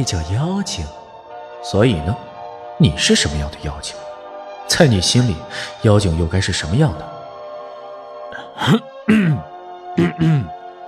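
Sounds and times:
speech: 0:00.0 - 0:01.0, 0:01.6 - 0:04.0, 0:04.7 - 0:07.1, 0:08.6 - 0:10.6
voice acting out a man clearing his throat: 0:08.4 - 0:10.6.

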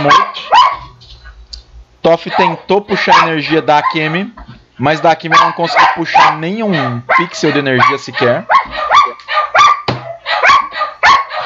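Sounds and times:
speech: 0:00.0 - 0:00.6, 0:02.1 - 0:08.9
dog barking in quick shrill yelps: 0:00.0 - 0:00.9, 0:02.3 - 0:04.2, 0:05.3 - 0:11.4.

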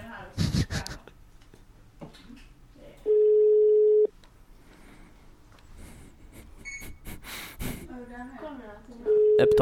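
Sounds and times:
people talking: 0:00.0 - 0:01.1, 0:07.9 - 0:09.6
telephone ringback tone while placing a call: 0:03.1 - 0:04.1, 0:09.1 - 0:09.6
people breathing: 0:04.6 - 0:08.0.

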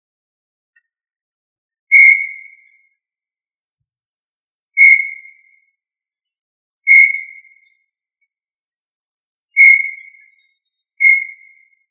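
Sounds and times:
tinamou calling with pure steady whistled notes: 0:01.9 - 0:02.9, 0:04.8 - 0:05.6, 0:06.9 - 0:07.8, 0:09.5 - 0:11.8.

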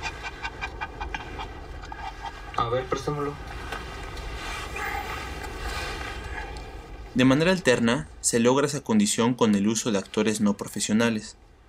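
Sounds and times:
dog panting: 0:00.0 - 0:02.6
soft hiss: 0:00.0 - 0:11.6
speech: 0:02.7 - 0:03.6, 0:07.2 - 0:11.4.

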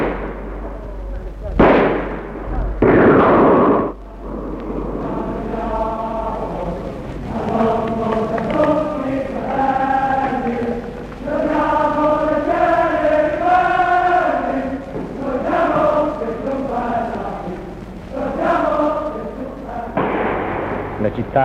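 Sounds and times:
voices talking: 0:00.6 - 0:01.6, 0:03.9 - 0:20.0, 0:21.0 - 0:21.4
gunfire bursts: 0:01.6 - 0:04.0, 0:20.0 - 0:21.1.

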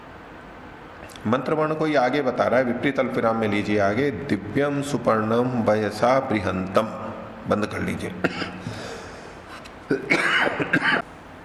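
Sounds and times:
quiet hiss: 0:00.0 - 0:11.4
speech: 0:01.1 - 0:08.8
rough, loud coughs: 0:08.2 - 0:09.0, 0:09.9 - 0:11.1
throat-clearing bursts: 0:09.9 - 0:11.0.

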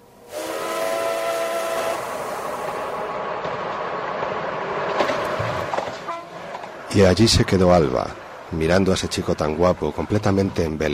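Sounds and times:
metro carriage rolling rumble: 0:00.0 - 0:10.9
metro train warning whistle: 0:00.2 - 0:03.0
speech: 0:07.0 - 0:10.9.

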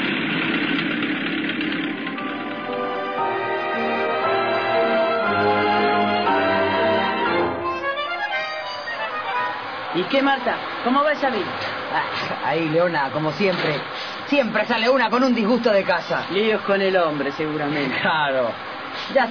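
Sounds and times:
bus engine idling at a bus stop: 0:00.0 - 0:19.2
speech: 0:10.1 - 0:19.2.

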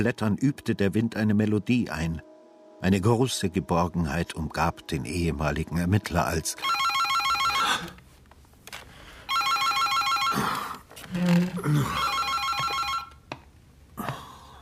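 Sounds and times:
speech: 0:00.0 - 0:06.9, 0:11.1 - 0:12.1
telephone bell ringing: 0:06.6 - 0:08.0, 0:09.3 - 0:10.6, 0:11.8 - 0:13.2.

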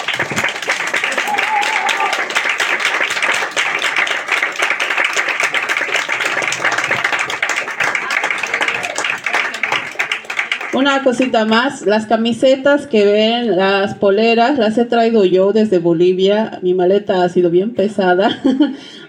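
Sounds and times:
audience applause at the end of a presentation: 0:00.0 - 0:11.4
speech: 0:10.8 - 0:19.0.

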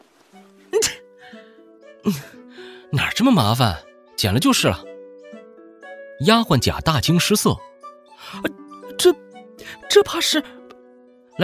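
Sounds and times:
person sneezing at a strong whiff of perfumed hair balm: 0:00.7 - 0:01.1
speech: 0:02.0 - 0:04.9, 0:06.2 - 0:07.7, 0:08.3 - 0:09.2, 0:09.9 - 0:10.6.

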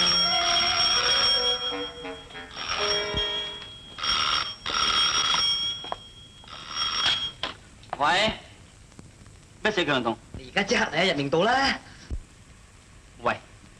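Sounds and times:
old bell-type telephone ringing: 0:00.0 - 0:07.6
speech: 0:09.7 - 0:11.9.

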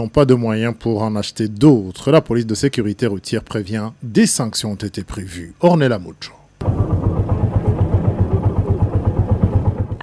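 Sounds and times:
speech: 0:00.0 - 0:06.4
motorcycle engines running at a station: 0:06.6 - 0:10.0.

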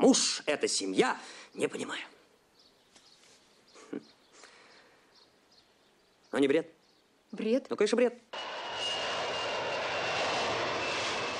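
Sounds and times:
speech: 0:00.1 - 0:02.2, 0:03.9 - 0:04.1, 0:06.3 - 0:08.5
Tupolev Tu-154 airliner taking off and retracting its landing gear: 0:08.4 - 0:11.3.

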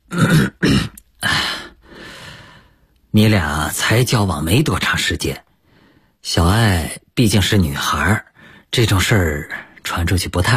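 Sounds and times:
throat clearing at a restaurant dinner table: 0:00.1 - 0:01.4
speech: 0:03.1 - 0:05.5, 0:06.2 - 0:10.5.

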